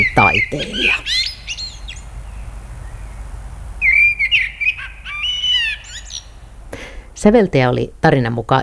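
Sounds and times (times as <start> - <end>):
Eurasian blackbird singing: 0.0 - 3.2, 3.8 - 6.4
speech: 0.1 - 1.2, 7.2 - 8.6.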